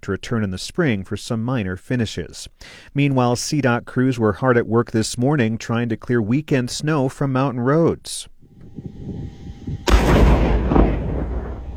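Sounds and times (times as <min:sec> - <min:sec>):
speech: 0:00.0 - 0:10.3
avalanche control explosive blast on a mountainside: 0:08.6 - 0:11.7.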